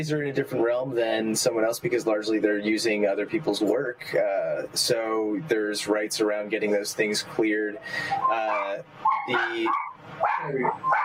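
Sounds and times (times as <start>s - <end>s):
speech: 0.0s - 11.0s
dog barking and yelping: 8.5s - 11.0s.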